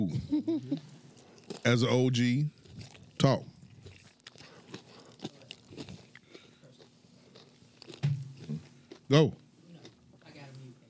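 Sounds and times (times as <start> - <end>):
speech: 0.0 - 0.9, 1.6 - 2.6, 3.2 - 3.5, 9.1 - 9.4
man chewing wetly while eating: 2.6 - 9.1.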